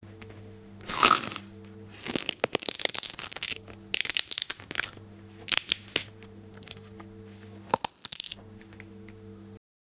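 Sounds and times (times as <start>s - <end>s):
person eating: 0.8s - 7.0s.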